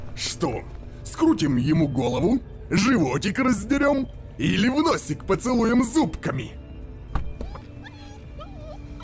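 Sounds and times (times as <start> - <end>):
speech: 0.2 - 6.6
small dog whining in high-pitched cries: 7.3 - 9.0.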